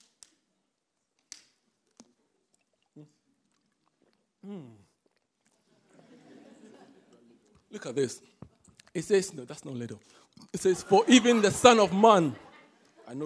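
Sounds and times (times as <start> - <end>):
person drinking water: 1.8 - 6.0, 7.4 - 9.1, 10.0 - 10.6
quiet swallows: 1.9 - 6.0, 8.4 - 9.0
speech: 3.0 - 3.3, 4.4 - 4.9, 7.7 - 8.3, 9.0 - 12.5, 13.1 - 13.2
laughter: 5.7 - 7.5, 10.6 - 13.2.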